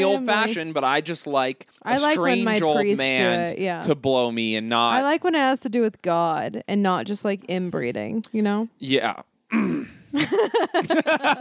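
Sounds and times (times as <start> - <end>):
speech: 0.0 - 11.3
laughter: 2.0 - 3.4, 10.2 - 11.3
low rumbling grunt: 9.5 - 10.1.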